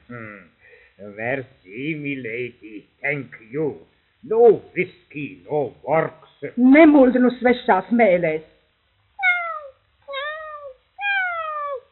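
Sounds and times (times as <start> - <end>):
speech: 0.1 - 8.5
kitten meowing to be let outside: 9.2 - 11.9.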